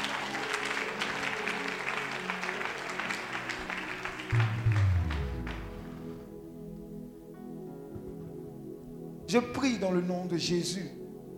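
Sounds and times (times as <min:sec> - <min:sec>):
church congregation applauding: 0:00.0 - 0:06.3
speech: 0:09.3 - 0:11.0.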